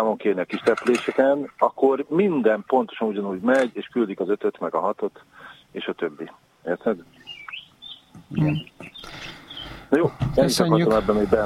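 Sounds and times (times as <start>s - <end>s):
speech: 0.0s - 7.2s, 8.3s - 11.4s
small birds chirping and tweeting: 2.2s - 10.1s
thin whistling bird calls: 7.1s - 9.8s.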